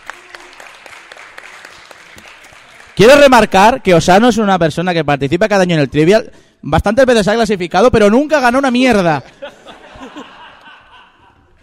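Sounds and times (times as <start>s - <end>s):
audience applauding at a song-guessing trivia contest: 0.0s - 3.4s
speech: 3.0s - 9.4s
laughter: 9.2s - 11.6s.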